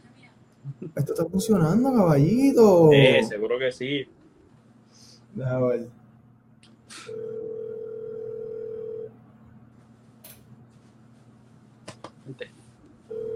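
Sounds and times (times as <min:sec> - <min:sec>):
speech: 0:00.8 - 0:04.2, 0:05.3 - 0:06.0, 0:12.3 - 0:12.6
telephone dial tone: 0:07.1 - 0:09.1, 0:13.1 - 0:13.3.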